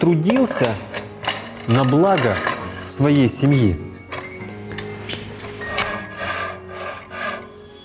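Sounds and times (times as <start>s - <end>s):
speech: 0.0s - 0.9s, 1.6s - 3.9s
plane working wood in carpentry: 5.7s - 7.8s
hand saw working wood in carpentry: 5.8s - 7.8s.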